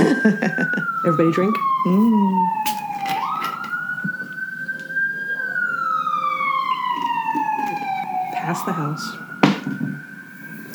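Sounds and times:
laughter: 0.0 - 1.0
emergency vehicle siren passing down a street: 0.0 - 10.7
traffic rumble: 0.0 - 10.7
speech: 0.2 - 2.8.

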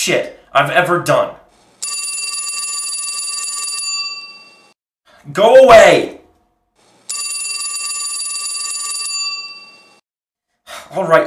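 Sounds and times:
speech: 0.0 - 1.4, 5.2 - 6.2, 10.9 - 11.2
phone ringing with electronic trill: 1.8 - 4.8, 7.1 - 10.0.

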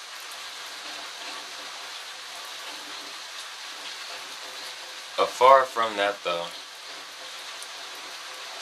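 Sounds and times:
steady rain falling: 0.0 - 8.6
speech: 5.2 - 6.6.

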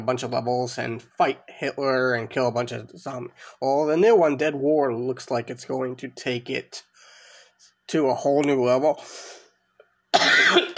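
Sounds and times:
speech: 0.0 - 6.9, 7.9 - 9.4
person coughing: 10.2 - 10.7.

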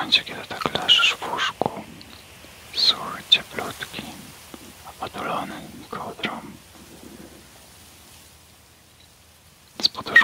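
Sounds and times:
steady hissing rain: 0.0 - 10.2
low soft rumble of thunder: 2.8 - 8.1.

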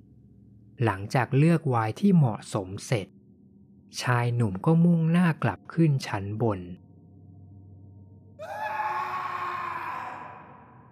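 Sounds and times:
speech: 0.8 - 3.2, 3.9 - 6.8
man screaming: 8.4 - 10.8.

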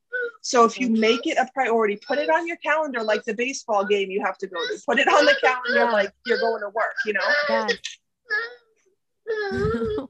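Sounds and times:
fussy baby crying: 0.1 - 0.4, 3.0 - 10.0
speech: 0.4 - 8.6, 9.3 - 10.0.

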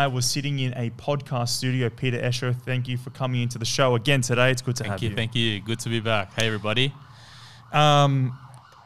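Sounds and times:
speech: 0.0 - 7.1, 7.7 - 8.4
emergency vehicle siren passing outside: 5.0 - 8.8.

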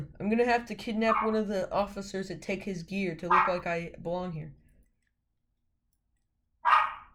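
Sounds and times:
speech: 0.3 - 4.6
guard dog barking: 3.3 - 3.6, 6.6 - 7.1.

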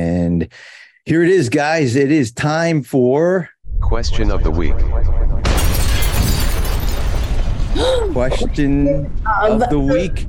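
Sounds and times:
speech: 0.4 - 5.2, 7.8 - 10.2
big explosion blast: 3.7 - 10.2
crackling debris: 5.4 - 9.3.

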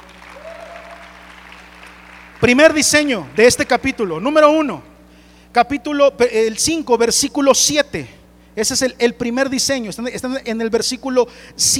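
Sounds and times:
audience applauding: 0.0 - 3.9
speech: 2.4 - 4.9, 5.5 - 11.7.

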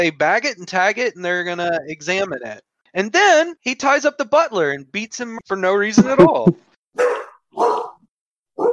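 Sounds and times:
speech: 0.0 - 7.9
dog barking: 7.0 - 8.0, 8.6 - 8.7.

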